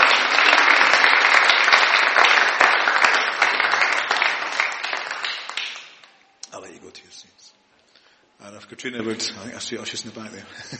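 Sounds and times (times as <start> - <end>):
room full of people applauding: 0.0 - 6.1
speech: 8.7 - 10.7.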